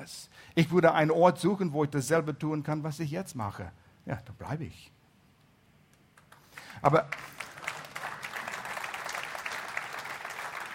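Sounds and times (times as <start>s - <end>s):
speech: 0.0s - 5.0s, 6.8s - 7.4s
audience applause: 6.5s - 10.7s.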